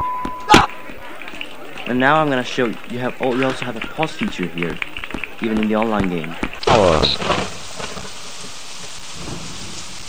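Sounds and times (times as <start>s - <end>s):
speech: 1.9s - 7.6s
video game steady dense rainfall: 3.3s - 10.0s.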